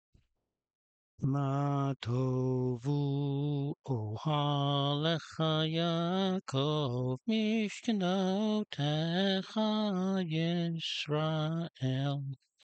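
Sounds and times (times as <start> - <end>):
person singing: 1.2 - 12.4.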